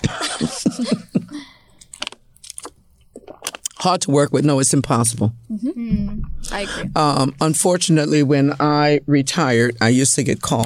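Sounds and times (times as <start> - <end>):
laughter: 0.0 - 1.5
swallowing: 1.7 - 3.8
person slurping a drink: 2.6 - 3.8
speech: 3.8 - 10.6.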